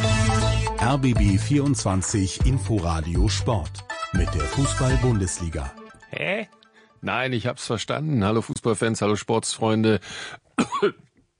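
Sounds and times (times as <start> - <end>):
speech: 0.9 - 11.0
faint breathing: 6.6 - 7.0, 10.0 - 10.4
person coughing after choking: 10.6 - 11.1.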